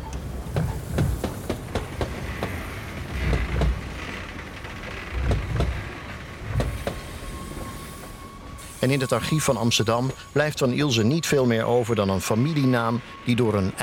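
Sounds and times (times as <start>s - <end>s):
train wheels clacking over track joints: 0.0s - 8.7s
continuous low rumble of train rolling along rails: 0.0s - 13.8s
speech: 8.8s - 13.8s.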